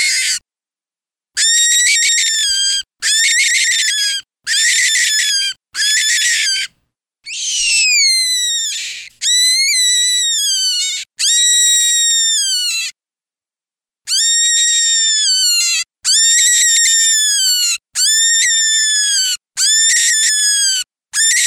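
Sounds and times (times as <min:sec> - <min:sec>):
cottontail rabbit distress calls: 0:00.0 - 0:00.4, 0:01.4 - 0:06.7, 0:07.3 - 0:12.9, 0:14.1 - 0:21.4.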